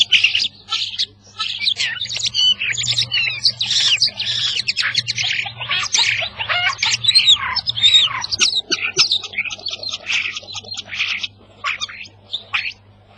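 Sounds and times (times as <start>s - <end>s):
starling mimicking calls of African or Asian birds: 0.0s - 13.1s.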